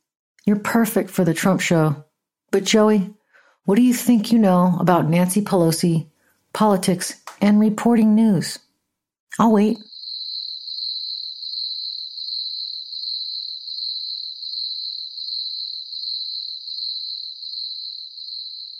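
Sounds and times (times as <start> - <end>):
speech: 0.5 - 8.6, 9.3 - 9.9
crickets chirping in a high-pitched trill: 9.8 - 18.7.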